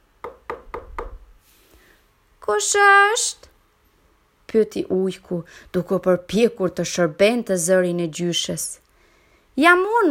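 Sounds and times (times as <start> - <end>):
light knocks on a door: 0.2 - 1.2
speech: 2.5 - 3.5, 4.5 - 8.8, 9.6 - 10.0.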